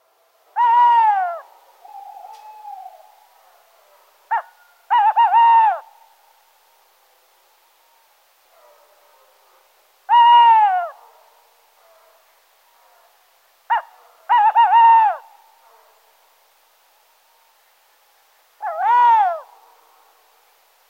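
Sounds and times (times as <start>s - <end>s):
tawny owl calling: 0.5s - 6.2s, 13.7s - 15.4s, 18.6s - 19.5s.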